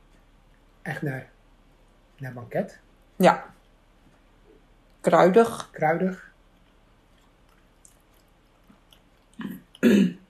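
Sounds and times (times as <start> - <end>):
speech: 0.9 - 1.4, 2.2 - 3.6, 5.0 - 6.3
person coughing after choking on pastry: 9.4 - 10.2.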